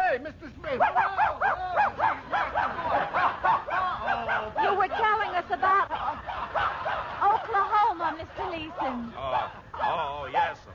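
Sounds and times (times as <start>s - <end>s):
speech: 0.2s - 2.0s
laughter: 0.2s - 10.3s
dog barking in high yaps: 0.8s - 5.2s, 6.0s - 7.8s, 9.3s - 10.6s.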